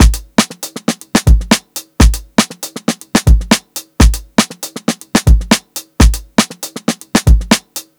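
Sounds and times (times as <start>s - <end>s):
120 BPM sixteenth note drum beat: 0.0s - 7.7s.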